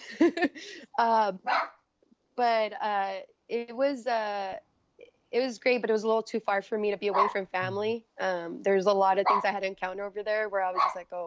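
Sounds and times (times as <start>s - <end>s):
laughter: 0.0s - 0.8s
speech: 0.1s - 1.7s, 2.4s - 4.7s, 5.3s - 11.2s
dogs barking and yelping: 1.5s - 1.8s, 7.1s - 7.4s, 9.2s - 9.5s, 10.7s - 11.0s.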